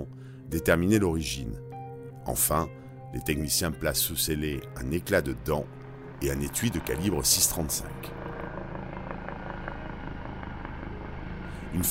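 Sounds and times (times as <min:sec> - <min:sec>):
speech: 0:00.5 - 0:01.6, 0:02.3 - 0:08.2
helicopters flying overhead: 0:03.7 - 0:11.8.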